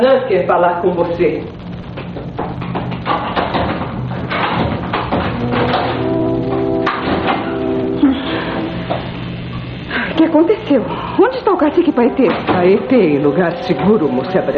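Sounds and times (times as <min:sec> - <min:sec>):
speech: 0:00.0 - 0:01.6, 0:10.3 - 0:14.5
dense rumbling background: 0:00.3 - 0:14.5
wooden door creaking open: 0:02.3 - 0:09.8.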